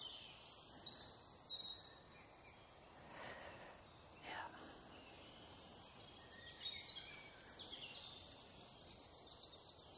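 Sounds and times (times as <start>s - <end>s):
birds chirping and twittering in woodland: 0.0s - 9.9s.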